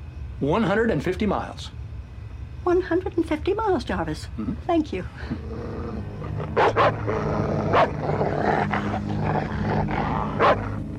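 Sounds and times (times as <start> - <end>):
speech: 0.4 - 1.8, 2.6 - 5.7, 6.4 - 9.5
dog barking: 6.5 - 9.6, 10.2 - 10.8.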